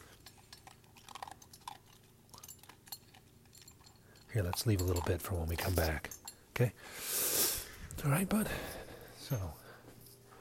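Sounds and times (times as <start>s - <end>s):
dog crunching dry kibble: 0.0s - 6.0s
bowl clinking: 0.5s - 6.4s
speech: 4.4s - 7.1s, 8.0s - 9.6s.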